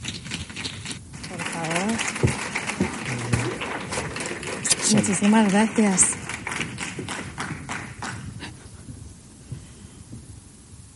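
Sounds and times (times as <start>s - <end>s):
crowd applauding a speaker at a talk: 0.2s - 8.6s
speech: 4.9s - 6.3s.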